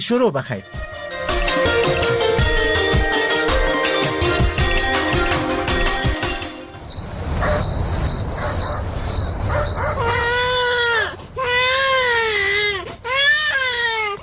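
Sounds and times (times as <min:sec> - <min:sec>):
music: 0:00.3 - 0:06.8
steady high insect-like chirping: 0:06.8 - 0:10.6
sick baby crying loudly: 0:09.8 - 0:14.2.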